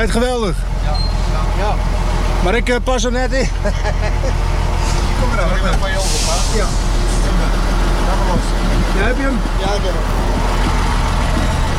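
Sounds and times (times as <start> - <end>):
speech: 0.0 - 4.6, 5.2 - 10.3
truck engine rumbling: 0.0 - 11.7
laughter: 3.4 - 4.9
truck air brake hiss: 4.8 - 5.2, 5.9 - 7.2.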